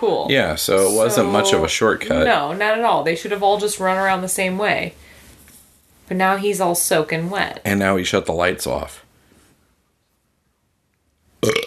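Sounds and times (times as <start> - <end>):
speech: 0.0 - 5.1, 6.1 - 9.0, 11.4 - 11.6
man belching: 0.8 - 1.8, 11.4 - 11.6.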